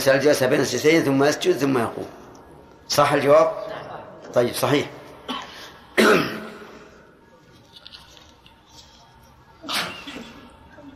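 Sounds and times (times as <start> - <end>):
speech: 0.0 - 2.2, 2.9 - 3.7, 4.3 - 5.0
loud sharp sneeze: 5.3 - 6.8, 9.6 - 10.4.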